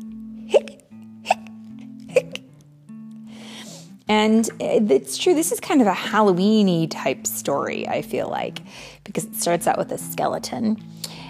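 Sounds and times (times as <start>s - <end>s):
person imitating hiccups with voice: 0.4s - 2.5s
speech: 4.2s - 11.2s.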